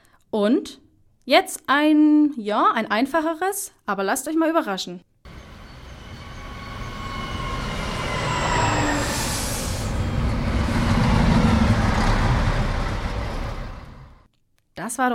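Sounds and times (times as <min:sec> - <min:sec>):
speech: 0:00.3 - 0:05.1, 0:14.9 - 0:15.1
high metallic squeal from the train wheels: 0:05.3 - 0:11.5
train rumbling through a railway station: 0:05.3 - 0:14.3.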